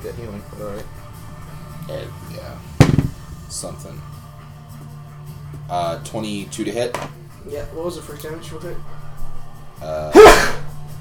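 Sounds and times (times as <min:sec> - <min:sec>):
speech: 0:00.0 - 0:01.1, 0:01.9 - 0:04.2, 0:05.7 - 0:09.0, 0:09.8 - 0:10.6
person sneezing: 0:10.1 - 0:10.6.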